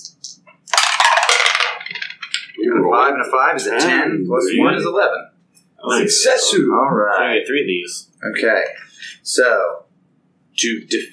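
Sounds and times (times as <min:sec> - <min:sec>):
dice tumbling through a new dice tower: 0:00.7 - 0:02.6
speech: 0:02.9 - 0:09.8, 0:10.6 - 0:11.1.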